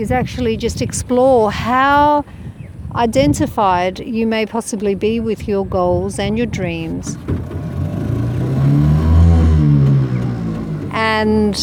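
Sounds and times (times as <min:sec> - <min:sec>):
speech: 0:00.0 - 0:07.4, 0:11.1 - 0:11.6
car engine starting and settling into idle: 0:06.8 - 0:11.6.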